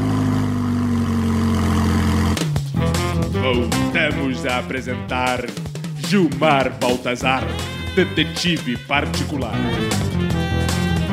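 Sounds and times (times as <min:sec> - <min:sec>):
car engine roaring with a deep throbbing drone: 0:00.0 - 0:03.3
speech: 0:03.5 - 0:10.0.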